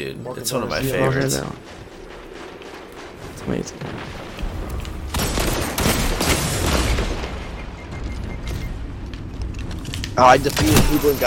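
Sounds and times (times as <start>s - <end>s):
speech: 0.0s - 1.9s, 3.4s - 4.4s, 10.2s - 11.2s
gunfire in a video game: 1.6s - 8.8s
grenade explosion in a video game: 1.6s - 9.0s.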